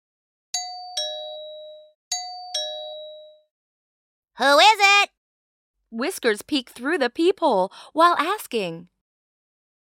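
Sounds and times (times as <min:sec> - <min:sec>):
doorbell chiming a two-note ding-dong: 0:00.6 - 0:03.5
speech: 0:04.4 - 0:05.1, 0:05.9 - 0:08.9.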